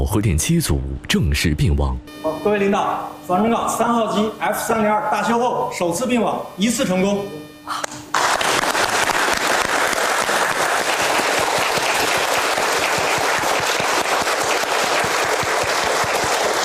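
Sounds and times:
speech: 0.1 - 7.9
applause from a roomful of people in a nuclear power plant control room: 8.1 - 16.6.

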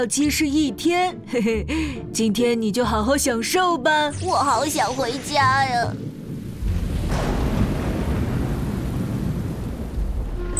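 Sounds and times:
speech: 0.0 - 6.2
heavy rain: 4.2 - 10.5
deep thunder rumbling: 4.6 - 10.5.

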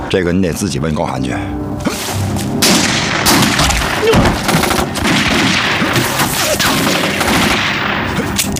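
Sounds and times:
speech: 0.1 - 2.1
gunfire until the gun runs out of bullets: 2.6 - 8.5.

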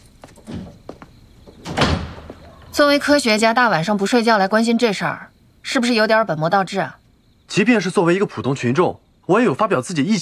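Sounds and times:
faint knocks and shuffles: 0.0 - 2.8
dull thud of a door shutting: 1.5 - 2.8
speech: 2.8 - 10.2.

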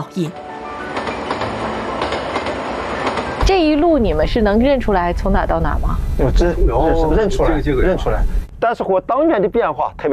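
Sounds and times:
speech: 0.0 - 0.5, 3.5 - 10.1
train pulling out of a station rumbling: 0.3 - 8.6
train wheels clicking on track: 0.8 - 5.2.

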